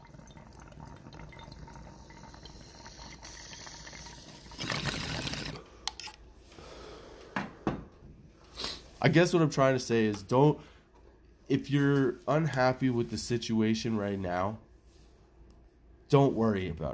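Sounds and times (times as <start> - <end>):
water bubbling in a pipe: 0.0 - 5.6
speech: 9.0 - 10.7, 11.5 - 14.6, 16.1 - 16.9.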